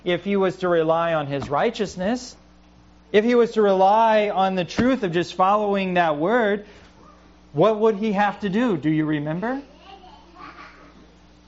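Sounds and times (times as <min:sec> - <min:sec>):
speech: 0:00.0 - 0:02.4, 0:03.1 - 0:06.8, 0:07.6 - 0:09.7
low steady hum: 0:00.0 - 0:11.4
infants and a young child babbling: 0:09.7 - 0:11.1.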